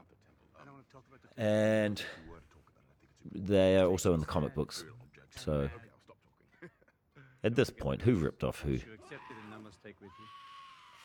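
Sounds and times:
speech: 0:00.9 - 0:05.9, 0:07.4 - 0:10.6
giant goats screeching: 0:09.0 - 0:11.0.

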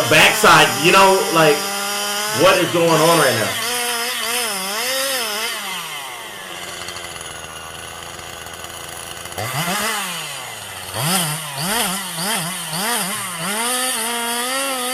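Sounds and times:
loud chainsaw sawing through a big tree: 0:00.0 - 0:14.9
speech: 0:00.1 - 0:01.7, 0:02.3 - 0:03.6.

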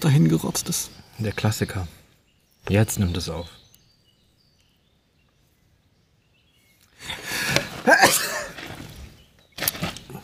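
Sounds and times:
speech: 0:00.0 - 0:02.0, 0:02.6 - 0:03.6, 0:07.9 - 0:08.6
person sneezing after a building inhale: 0:07.8 - 0:08.5.

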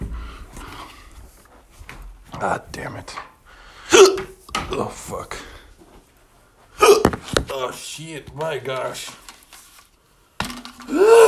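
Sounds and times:
speech: 0:02.4 - 0:03.3, 0:03.9 - 0:05.5, 0:07.2 - 0:09.2
hiccup: 0:03.9 - 0:04.4, 0:06.8 - 0:07.2.

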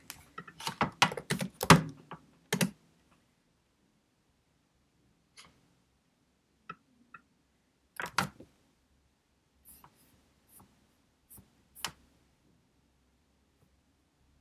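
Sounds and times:
computer keyboard typing with crisp keys: 0:00.6 - 0:01.9, 0:02.5 - 0:02.8.

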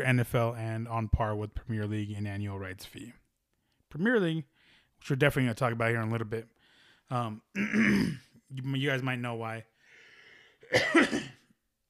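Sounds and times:
speech: 0:00.0 - 0:03.2, 0:03.9 - 0:06.5, 0:07.1 - 0:09.7, 0:10.7 - 0:11.4
loud cough: 0:07.6 - 0:08.3, 0:10.6 - 0:11.5.

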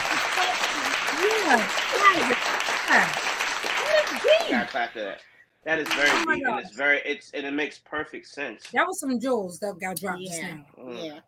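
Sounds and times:
hands clapping: 0:00.0 - 0:04.9, 0:05.8 - 0:06.3
speech: 0:01.5 - 0:03.3, 0:04.2 - 0:11.2.

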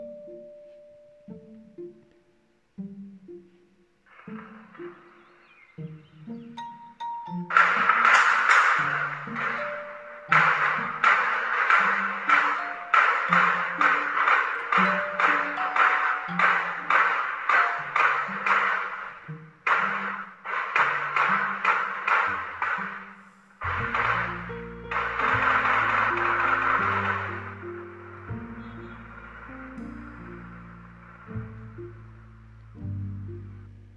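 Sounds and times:
pinging tones: 0:04.2 - 0:32.2
rapid gunfire during an armed attack in Lomas de Chapultepec Mexico City: 0:07.5 - 0:27.7.

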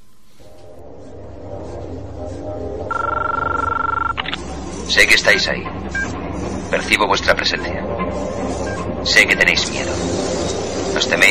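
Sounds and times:
telephone warbling electronic ring in a film scene: 0:02.9 - 0:04.3
speech: 0:04.9 - 0:06.0, 0:06.7 - 0:08.4, 0:09.0 - 0:10.3, 0:11.0 - 0:11.3.

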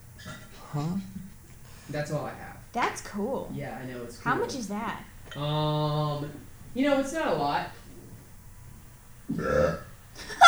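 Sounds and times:
speech: 0:00.7 - 0:01.2, 0:01.9 - 0:07.8, 0:09.3 - 0:09.8
loud guttural burp: 0:09.3 - 0:10.0.

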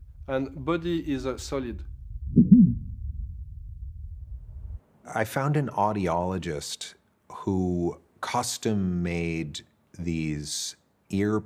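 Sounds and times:
inner body sounds through a stethoscope touching the body: 0:00.0 - 0:04.8
speech: 0:00.3 - 0:02.4, 0:05.1 - 0:11.4.

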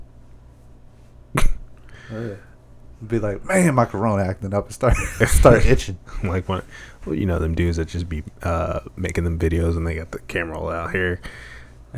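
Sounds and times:
person imitating a sneeze: 0:01.3 - 0:01.8, 0:03.4 - 0:03.9
speech: 0:02.1 - 0:11.9
laughter: 0:04.9 - 0:06.7.

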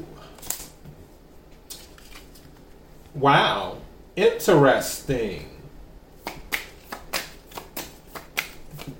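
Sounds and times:
tarot cards being shuffled by hand: 0:00.4 - 0:00.8, 0:01.5 - 0:02.8, 0:06.2 - 0:08.9
speech: 0:03.2 - 0:05.5.

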